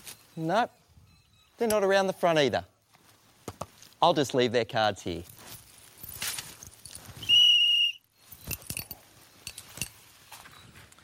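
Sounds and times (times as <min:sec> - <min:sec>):
speech: 0:00.4 - 0:00.8, 0:01.6 - 0:02.7, 0:04.0 - 0:05.4
person blowing a whistle: 0:07.2 - 0:08.1
clicks and clatter: 0:08.4 - 0:10.0.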